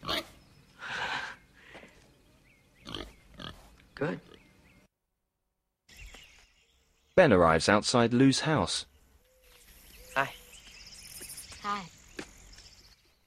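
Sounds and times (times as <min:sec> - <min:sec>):
pig grunting and snorting: 0:00.0 - 0:00.4, 0:02.8 - 0:04.4
speech: 0:04.0 - 0:04.3, 0:07.2 - 0:08.9, 0:10.2 - 0:10.4.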